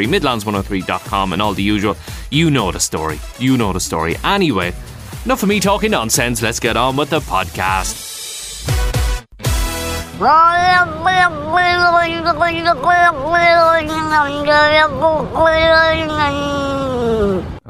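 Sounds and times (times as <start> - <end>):
speech: 0.0 - 8.8, 10.2 - 17.6
cat making a warbling yowl: 10.2 - 17.5.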